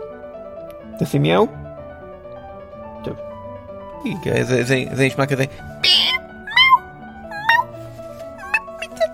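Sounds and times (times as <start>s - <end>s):
speech: 1.0s - 1.6s, 3.0s - 3.3s, 4.0s - 5.7s
small new female cat meowing softly on shoes in a wardrobe: 5.8s - 7.7s.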